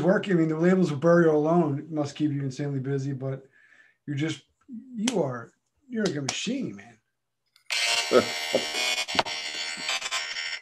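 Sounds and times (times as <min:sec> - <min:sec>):
speech: 0:00.0 - 0:06.9, 0:08.1 - 0:09.3
phone alarm buzzing with sound turned off: 0:07.7 - 0:10.5.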